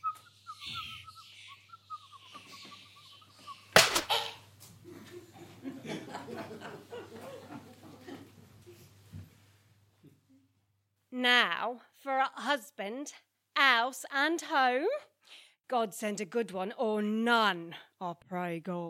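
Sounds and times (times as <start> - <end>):
nightingale singing: 0.0 - 3.6
soft chattering chuckle-like sounds: 0.1 - 5.6
speech: 11.2 - 13.3, 13.9 - 15.0, 15.7 - 18.8.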